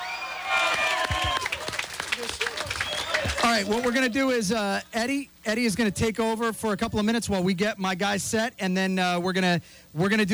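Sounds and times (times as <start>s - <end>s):
audience applause for a performer: 0.0s - 4.1s
crowd cheering and whooping: 0.0s - 4.2s
speech: 3.5s - 10.3s.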